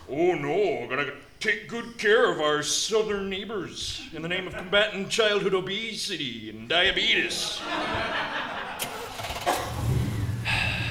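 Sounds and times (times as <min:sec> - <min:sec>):
speech: 0:00.1 - 0:08.2
laughter: 0:04.0 - 0:05.1, 0:07.2 - 0:09.8
truck engine cranking and settling into a low rumble: 0:08.8 - 0:10.8.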